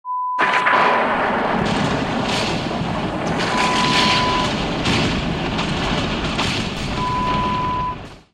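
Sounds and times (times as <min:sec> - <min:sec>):
lightning bolt strike: 0:00.4 - 0:08.3.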